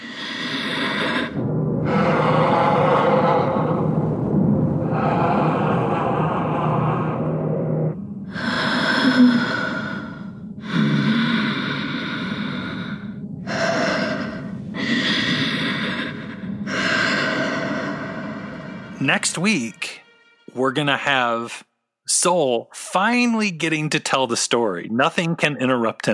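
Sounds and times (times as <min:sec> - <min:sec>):
heavy mechanical-sounding breathing through a helmet: 0:00.0 - 0:04.2, 0:04.8 - 0:19.0
low rumbling drone: 0:00.0 - 0:20.0
speech: 0:19.1 - 0:19.9, 0:20.6 - 0:26.1.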